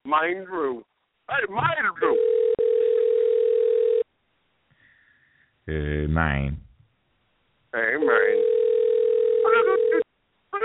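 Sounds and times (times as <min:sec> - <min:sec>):
speech: 0:00.1 - 0:02.5, 0:05.6 - 0:06.6, 0:07.7 - 0:08.3
telephone dial tone: 0:02.1 - 0:04.0, 0:08.3 - 0:10.0.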